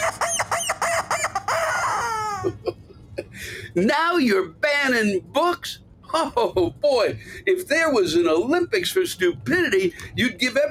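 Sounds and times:
rubber chicken toy squawking and squealing: 0.0s - 2.6s
speech: 3.8s - 10.6s.

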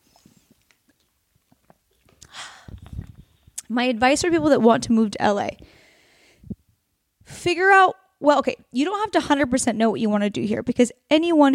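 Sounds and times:
person sipping water: 0.2s - 3.7s
soft mouth clicks and smacks: 0.5s - 3.7s
speech: 3.7s - 5.8s, 7.4s - 11.5s.

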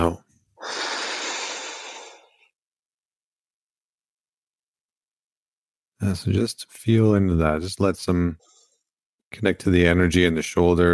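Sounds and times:
deep human exhalation: 0.6s - 2.5s
speech: 6.0s - 8.5s, 9.3s - 10.9s.

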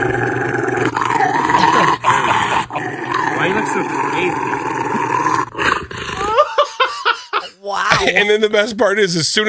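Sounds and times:
Rottweiler growling and roaring during a bath: 0.0s - 6.6s
laughter: 1.6s - 3.0s, 6.2s - 8.6s
speech: 8.1s - 9.4s.

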